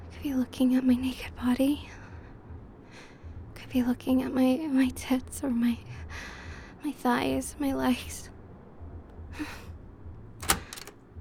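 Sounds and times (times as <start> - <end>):
speech: 0.2 - 2.0, 3.7 - 8.3, 9.4 - 9.6
hotel room door opening: 10.4 - 11.0.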